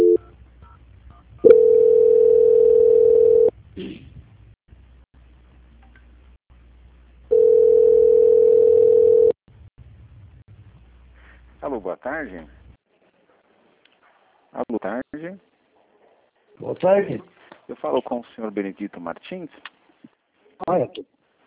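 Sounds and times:
telephone ringback tones during call transfer: 0:00.0 - 0:00.3, 0:01.4 - 0:03.5, 0:07.3 - 0:09.4
speech: 0:12.0 - 0:12.6, 0:14.8 - 0:15.5, 0:16.6 - 0:19.7, 0:20.6 - 0:21.1.

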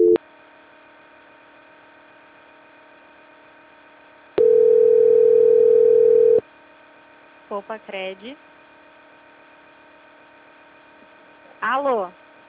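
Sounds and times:
telephone dial tone during a call transfer: 0:00.0 - 0:00.2, 0:04.4 - 0:06.4
faint hum: 0:00.0 - 0:12.4
speech: 0:07.6 - 0:08.6, 0:11.6 - 0:12.2.

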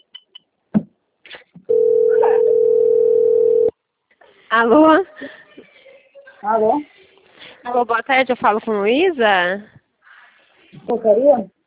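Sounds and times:
low-pitched continuous telephone tone while placing a call: 0:01.7 - 0:03.8
speech: 0:04.6 - 0:05.7, 0:06.4 - 0:07.0, 0:07.6 - 0:09.7, 0:10.9 - 0:11.6.

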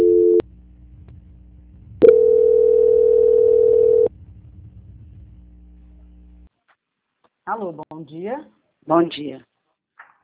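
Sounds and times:
telephone tones during a call transfer: 0:00.0 - 0:00.4, 0:02.0 - 0:04.1
speech: 0:07.6 - 0:09.5.

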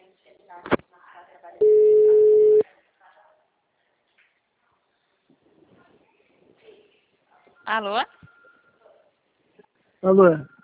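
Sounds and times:
telephone ringback tone on an outgoing phone call: 0:01.6 - 0:02.6
speech: 0:07.7 - 0:08.2, 0:10.0 - 0:10.5.

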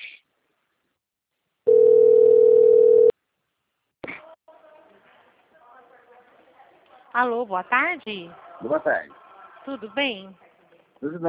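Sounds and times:
telephone dial tone while calling a number: 0:01.7 - 0:03.1
speech: 0:07.2 - 0:10.4, 0:11.0 - 0:11.2.

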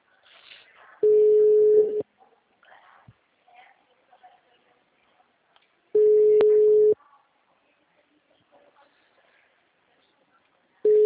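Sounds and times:
telephone ringback tone: 0:01.0 - 0:02.0, 0:06.0 - 0:07.0, 0:10.9 - 0:11.0.

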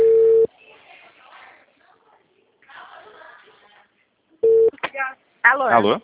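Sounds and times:
telephone line tone beeps after a dropped call: 0:00.0 - 0:00.5, 0:04.4 - 0:04.7.

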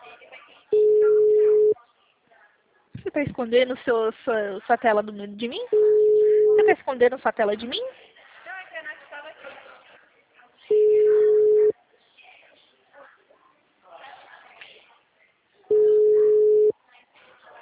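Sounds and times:
ringback tone of a phone call ringing through to voicemail: 0:00.8 - 0:01.8, 0:05.7 - 0:06.7, 0:10.7 - 0:11.7, 0:15.7 - 0:16.7
speech: 0:03.1 - 0:05.9, 0:06.6 - 0:08.0.

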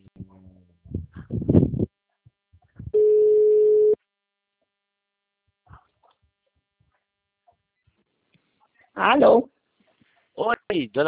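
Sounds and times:
telephone line tone after a call cut out: 0:03.0 - 0:04.0
speech: 0:09.0 - 0:09.5, 0:10.4 - 0:11.0.

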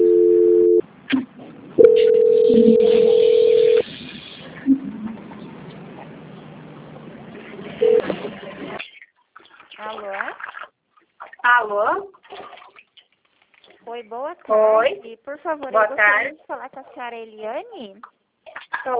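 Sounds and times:
telephone line tones of a call being transferred: 0:00.0 - 0:00.8, 0:01.8 - 0:03.8, 0:07.8 - 0:08.1
speech: 0:02.5 - 0:03.2, 0:14.4 - 0:18.2, 0:18.8 - 0:18.9.

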